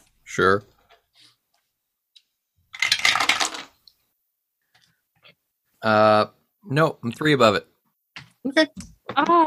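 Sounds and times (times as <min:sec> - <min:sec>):
speech: 0:00.4 - 0:00.7, 0:05.8 - 0:07.7, 0:08.4 - 0:09.4
dice clattering and rattling across a hard tabletop: 0:02.7 - 0:03.8.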